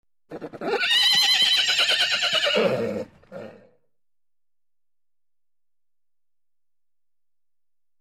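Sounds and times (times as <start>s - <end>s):
horse neighing: 0.3s - 3.8s.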